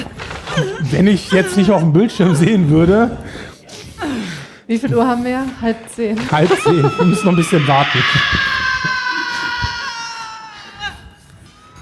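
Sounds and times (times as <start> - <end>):
laughter: 0.4 - 3.1, 6.3 - 10.8
speech: 0.6 - 3.5, 4.7 - 8.6
loud high-pitched scream from a film clip: 6.5 - 10.8.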